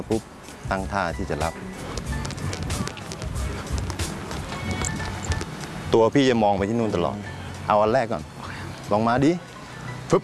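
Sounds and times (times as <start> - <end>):
speech: 0.0 - 1.8, 5.9 - 8.3, 8.9 - 9.5
running footsteps on a hard floor during a cross-step-over running drill: 1.9 - 5.8.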